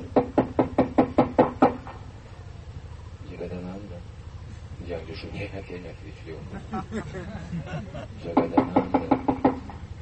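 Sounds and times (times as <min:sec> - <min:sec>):
firm knocking on a door: 0:00.1 - 0:01.8, 0:08.3 - 0:09.8
speech: 0:05.2 - 0:09.1
laughter: 0:06.3 - 0:08.4.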